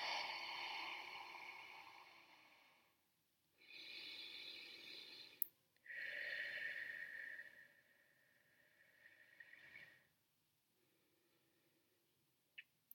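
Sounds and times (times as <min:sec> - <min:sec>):
slow deep breathing in and out: 0:00.0 - 0:03.0, 0:03.6 - 0:10.1.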